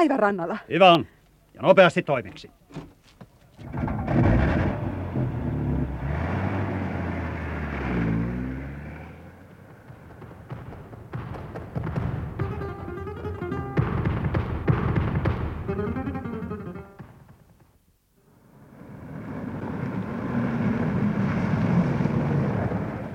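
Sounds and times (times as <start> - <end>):
speech: 0.0 - 2.9
knocks and rattles in a driving car: 3.6 - 5.3, 9.5 - 17.8
car engine accelerating and driving: 3.6 - 11.2, 18.3 - 23.1.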